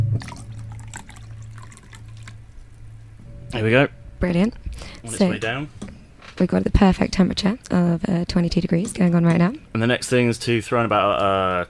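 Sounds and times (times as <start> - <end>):
cold water pouring into boiled water: 0.0 - 3.2
speech: 3.5 - 11.6.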